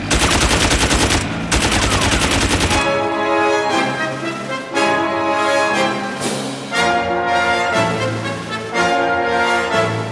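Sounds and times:
machine gun fire: 0:00.0 - 0:03.1
sustained music: 0:00.0 - 0:10.1.

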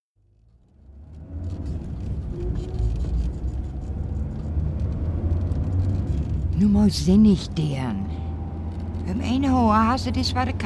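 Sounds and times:
car engine rumbling: 0:00.2 - 0:10.6
speech: 0:06.6 - 0:08.0, 0:09.6 - 0:10.6.

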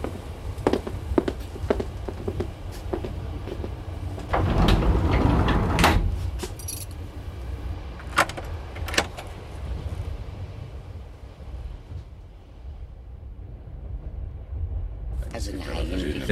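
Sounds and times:
footsteps walking away: 0:00.0 - 0:04.3
low rumble of a moving train: 0:00.0 - 0:16.3
keys jangling: 0:06.4 - 0:07.0.

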